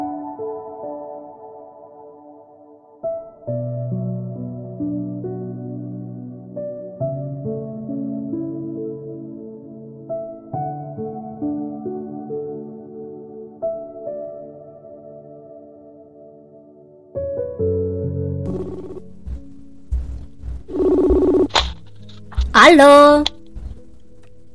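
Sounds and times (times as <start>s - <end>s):
soft musical bed: 0.0s - 24.5s
tonal electronic notes: 18.5s - 21.6s
clattering noise: 18.5s - 22.6s
speech: 22.6s - 23.3s.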